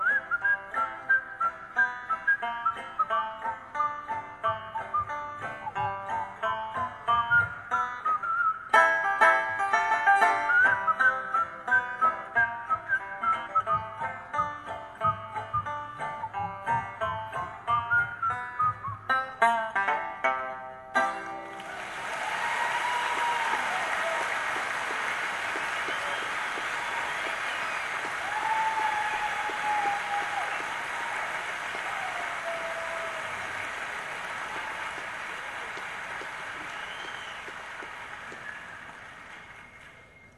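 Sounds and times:
people whistling a tune: 0.0s - 3.3s, 4.6s - 5.9s, 7.1s - 8.8s, 10.3s - 14.0s, 15.4s - 16.4s, 17.7s - 19.1s, 21.6s - 40.3s
backing song: 0.0s - 20.3s, 21.0s - 40.1s.

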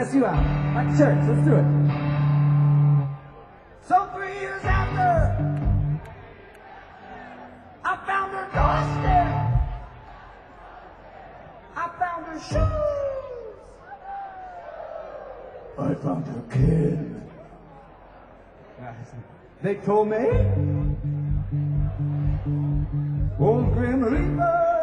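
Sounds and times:
speech: 0.0s - 2.0s, 15.8s - 17.3s, 18.9s - 24.7s
crowd yelling back in unison in call and response: 1.9s - 16.1s, 20.8s - 23.4s.

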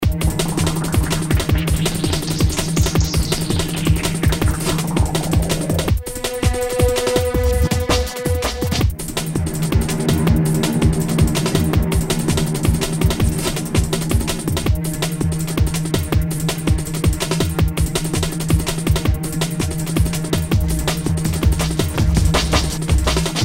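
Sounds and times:
drums: 0.0s - 23.4s
cello: 5.9s - 23.2s.

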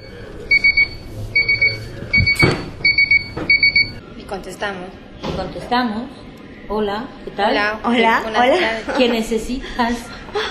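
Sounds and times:
resident call button electronic alarm at a care facility for people with spinal cord injuries: 0.0s - 4.0s
speech: 4.4s - 10.4s.

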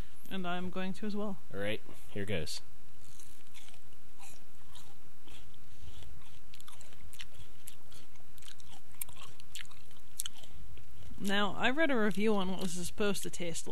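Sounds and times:
speech: 0.3s - 2.7s, 11.2s - 13.7s
chewing a starfruit: 3.0s - 13.7s
wet crunching of a juicy starfruit being bitten: 3.0s - 13.7s.

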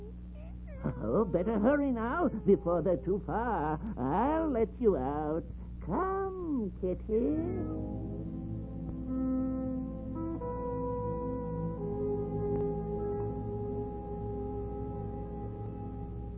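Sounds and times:
sustained tonal drone: 0.0s - 16.3s
kitten meowing: 0.4s - 2.5s
speech: 0.8s - 8.1s.

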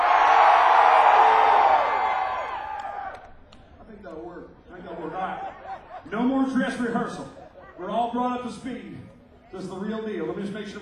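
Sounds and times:
big crowd screaming and whooping during a performance: 0.0s - 3.4s
laughter: 4.8s - 7.8s
speech: 6.9s - 7.3s, 8.1s - 10.7s.

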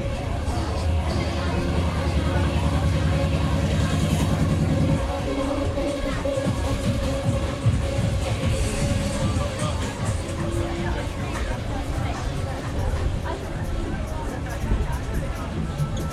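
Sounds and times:
crowded market chatter: 0.0s - 16.1s
deep engine-like rumble: 0.0s - 16.1s.

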